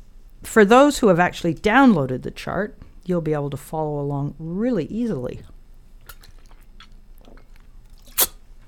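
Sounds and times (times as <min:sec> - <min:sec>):
speech: 0:00.4 - 0:05.5
quick hissy slurping sip of a drink: 0:07.4 - 0:08.4.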